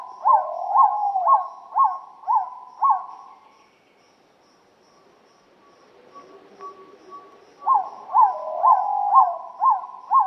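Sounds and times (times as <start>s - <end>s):
bird hooting in Peru: 0.0s - 3.2s, 6.1s - 10.2s
faint continuous tone: 0.0s - 10.2s.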